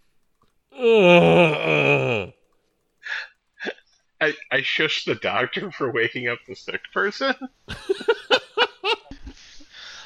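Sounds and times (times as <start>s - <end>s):
speech: 0.8s - 1.3s, 4.6s - 8.2s
voice imitating a tired sore-backed moan: 0.8s - 2.4s
laughter: 7.7s - 9.7s.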